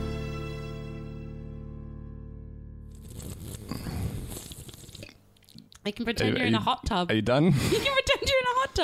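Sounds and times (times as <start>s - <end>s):
person bubbling and slurping a drink into the microphone: 2.9s - 5.8s
speech: 6.0s - 8.8s.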